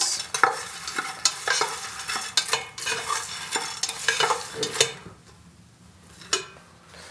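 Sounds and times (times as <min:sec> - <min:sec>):
utensil scraping a pan: 0:00.0 - 0:05.1
popcorn kernels sizzling in hot garlic coconut oil: 0:00.0 - 0:07.0.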